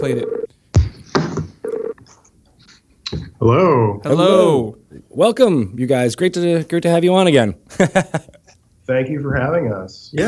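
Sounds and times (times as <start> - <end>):
speech: 0.0 - 0.4, 3.4 - 10.2
telephone ring tone: 0.0 - 2.2
telephone dialing electronic tone bursts: 0.0 - 2.7
laughter: 7.6 - 8.6.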